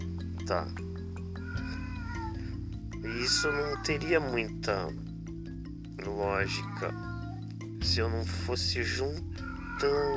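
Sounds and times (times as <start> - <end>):
speech: 0.5 - 0.9, 3.0 - 5.1, 6.0 - 7.1, 7.8 - 10.1
cats meowing in a drawn-out wavering cry: 1.3 - 4.9, 6.0 - 7.6, 9.3 - 10.1.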